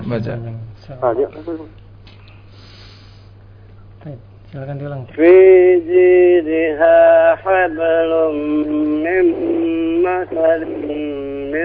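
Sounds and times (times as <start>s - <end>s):
speech: 0.1s - 1.8s, 4.0s - 11.6s
deep hissing breath drawn in: 2.4s - 3.4s.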